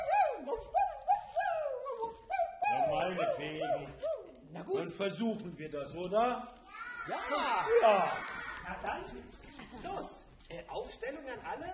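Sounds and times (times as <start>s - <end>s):
person imitating a howling dog: 0.0s - 4.4s
speech: 3.1s - 11.7s.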